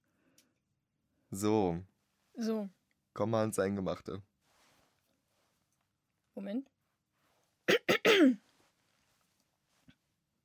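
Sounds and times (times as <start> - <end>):
speech: 1.3 - 4.3, 6.4 - 6.7, 7.7 - 8.4
person clearing throat: 7.7 - 8.4.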